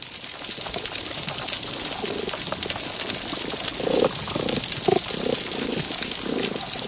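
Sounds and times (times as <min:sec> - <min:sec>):
snapping shrimp crackling on a healthy coral reef underwater: 0:01.5 - 0:06.8.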